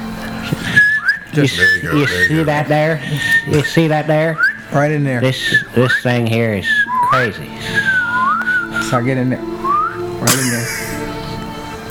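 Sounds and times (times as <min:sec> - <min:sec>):
laughter: 0:00.0 - 0:09.3, 0:10.0 - 0:11.8
voice-like murmuring: 0:00.4 - 0:07.8
person whistling high notes: 0:00.5 - 0:09.0, 0:09.6 - 0:10.8
speech: 0:01.3 - 0:07.9, 0:08.9 - 0:09.6, 0:10.2 - 0:11.0.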